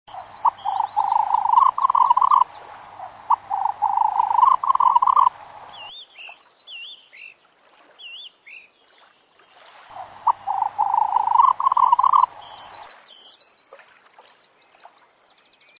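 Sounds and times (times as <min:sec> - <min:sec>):
black grouse calling: 0:00.1 - 0:05.9, 0:09.9 - 0:12.8.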